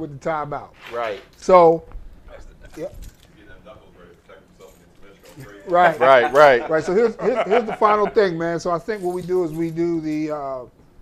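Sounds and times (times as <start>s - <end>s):
speech: 0.0s - 2.0s, 2.7s - 3.1s, 5.4s - 10.8s
keys jangling: 2.7s - 3.4s, 8.8s - 10.3s
laughter: 5.4s - 8.5s.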